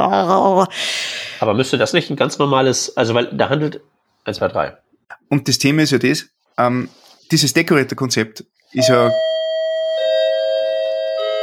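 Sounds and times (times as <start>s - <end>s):
speech: 0.0s - 9.3s
church bells ringing: 8.8s - 11.4s.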